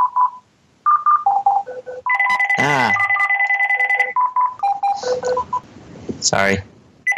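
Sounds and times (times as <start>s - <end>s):
phone electronic ringtone: 0.0s - 5.6s
person exclaiming: 2.6s - 3.0s
speech: 2.6s - 3.0s, 6.2s - 6.7s.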